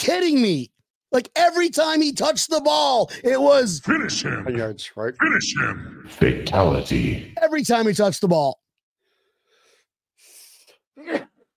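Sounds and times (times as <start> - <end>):
speech: 0.0 - 8.6
person sneezing: 11.0 - 11.4.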